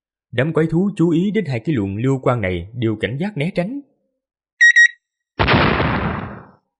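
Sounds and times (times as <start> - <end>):
speech: 0.3 - 3.9
short bright electronic beeps of time bombs: 4.6 - 5.0
time bomb explosion blast: 5.4 - 6.6.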